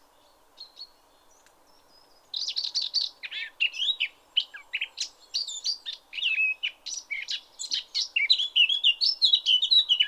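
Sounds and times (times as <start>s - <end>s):
Eurasian blackcap Sylvia atricapilla warbling: 0.1s - 10.0s.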